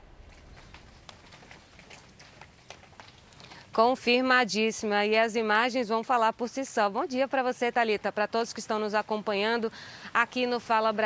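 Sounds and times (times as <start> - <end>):
steady hiss of rain: 0.0 - 3.8
speech: 3.8 - 11.0.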